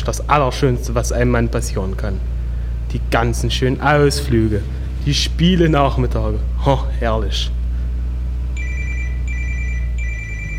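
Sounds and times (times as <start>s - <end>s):
speech: 0.0s - 7.6s
steady low engine-like rumble inside a taxi: 0.0s - 10.5s
phone ringing inside a taxi with electronic chirping tones: 8.6s - 10.5s.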